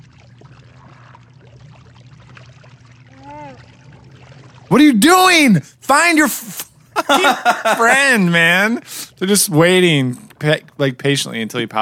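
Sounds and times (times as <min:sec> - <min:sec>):
water splashing and sloshing: 0:00.0 - 0:05.1
speech: 0:04.7 - 0:11.7
laughter: 0:07.0 - 0:08.8.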